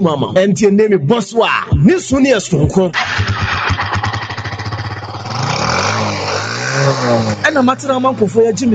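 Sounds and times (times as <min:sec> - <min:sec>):
speech: 0:00.0 - 0:03.6, 0:06.9 - 0:08.7
motorcycle engine revving: 0:03.0 - 0:08.7.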